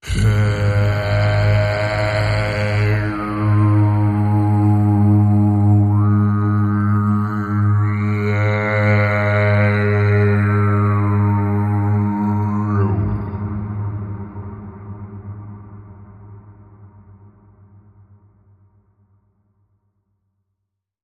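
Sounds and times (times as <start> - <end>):
humming drone: 0.0 - 16.4.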